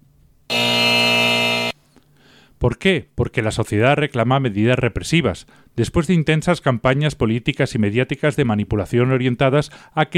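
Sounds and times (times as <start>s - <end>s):
harsh electronic error buzzer: 0.5s - 1.8s
speech: 2.6s - 10.1s.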